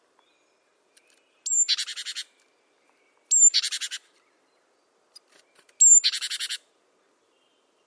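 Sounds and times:
great tit calling: 1.4 - 2.3, 3.3 - 4.1, 5.8 - 6.6.

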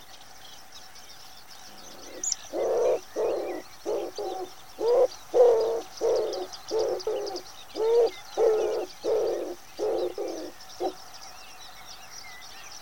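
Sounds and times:
common wood pigeon cooing: 1.9 - 11.0.

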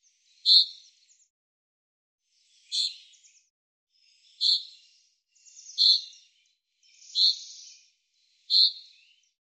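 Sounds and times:
common chaffinch calls: 0.3 - 0.9, 2.6 - 3.2, 4.1 - 6.2, 6.8 - 9.0.

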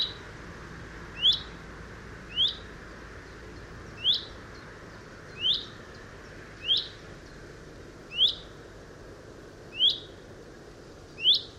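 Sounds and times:
chaffinch giving short rising whistled calls: 0.0 - 0.3, 1.1 - 1.6, 2.3 - 2.7, 3.6 - 7.4, 8.1 - 8.6, 9.7 - 10.2, 11.1 - 11.5
soft background hiss: 0.0 - 11.5.

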